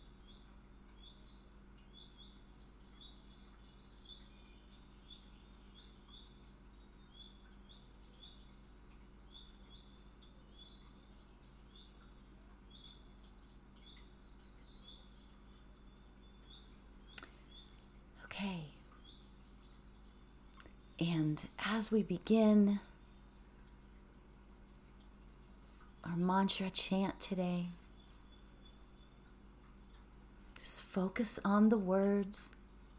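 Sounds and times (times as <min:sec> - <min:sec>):
birds singing: 0:00.0 - 0:32.9
low hum: 0:00.0 - 0:32.9
speech: 0:21.0 - 0:22.9, 0:26.4 - 0:27.8, 0:31.0 - 0:32.6.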